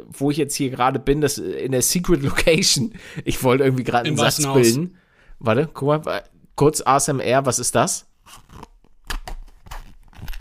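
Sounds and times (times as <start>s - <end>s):
speech: 0.0s - 8.7s
zipper on a headphone case being pulled: 8.2s - 8.8s.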